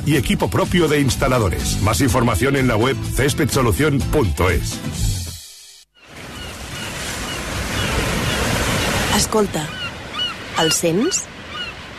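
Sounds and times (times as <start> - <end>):
speech: 0.0 - 5.2, 9.2 - 9.8, 10.6 - 11.4
rushing surf of sea waves: 6.0 - 11.9.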